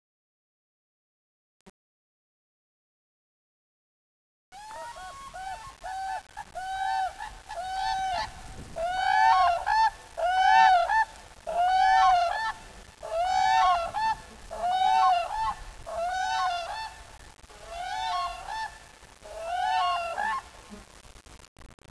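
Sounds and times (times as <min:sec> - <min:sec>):
cranes calling in unison: 0:04.6 - 0:20.9.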